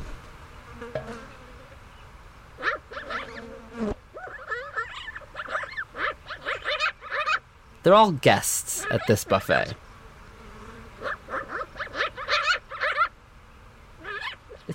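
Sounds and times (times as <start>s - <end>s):
insects buzzing around a bison carcass: 0.0s - 14.7s
magpies chirping and chattering harshly: 2.6s - 3.5s, 4.1s - 9.8s, 11.0s - 13.1s, 14.0s - 14.7s
speech: 7.8s - 9.8s.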